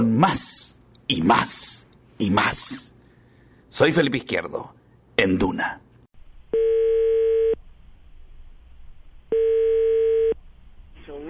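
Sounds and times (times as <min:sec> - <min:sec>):
speech: 0:00.0 - 0:02.9, 0:03.7 - 0:05.8
faint noise: 0:00.0 - 0:11.2
telephone line tone beeps as a call is placed: 0:06.6 - 0:07.6, 0:09.3 - 0:10.4.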